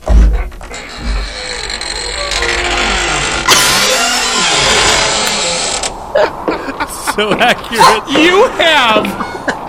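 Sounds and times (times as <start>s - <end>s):
creaky door opening to let a dog out: 0.0s - 6.0s
laughter: 6.2s - 9.6s
speech: 7.2s - 9.3s.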